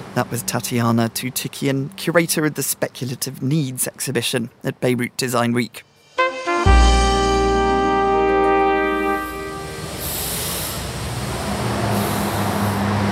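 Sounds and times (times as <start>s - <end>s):
busy road traffic rumbling in Beirut: 0.0s - 2.8s, 7.6s - 13.0s
speech: 0.2s - 5.9s
loud sustained horn blaring: 6.1s - 10.4s.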